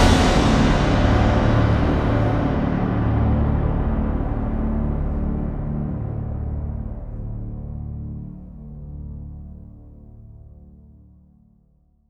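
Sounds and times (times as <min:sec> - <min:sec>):
orchestra stab in D: 0:00.0 - 0:06.9.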